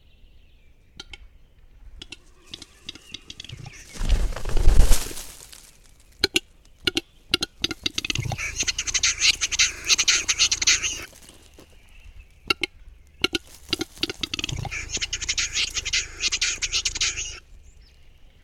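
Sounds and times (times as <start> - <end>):
male capercaillie calling: 2.0 - 5.3, 7.5 - 17.5.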